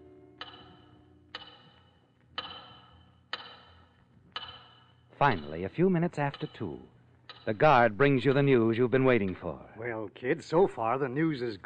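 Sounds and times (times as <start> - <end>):
big clock ticking: 0.4 - 9.6
speech: 5.2 - 11.6.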